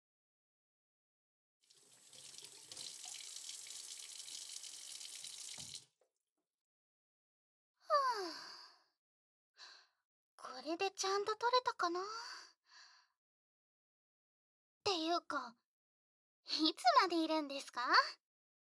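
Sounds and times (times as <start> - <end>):
water running from an outdoor tap as a skirt is washed: 1.6 - 6.0
brief breath: 8.2 - 8.9, 9.6 - 10.0, 12.1 - 13.2
speech: 10.6 - 12.4, 14.9 - 15.6, 16.5 - 18.2.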